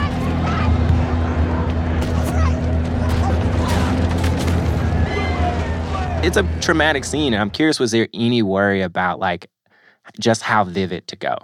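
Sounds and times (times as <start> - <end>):
sharp bangs: 0.0 - 7.0
crowd shouting: 0.0 - 7.2
booming blasts: 0.0 - 7.4
constant low rumble: 0.0 - 7.7
speech: 6.3 - 11.4.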